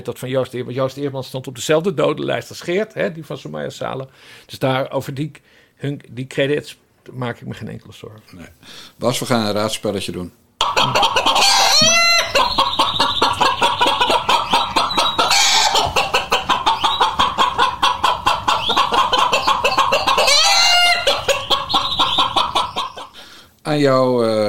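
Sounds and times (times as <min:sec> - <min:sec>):
speech: 0:00.0 - 0:11.4, 0:23.7 - 0:24.4
rooster crowing: 0:10.6 - 0:23.2
chickens clucking: 0:10.6 - 0:23.5.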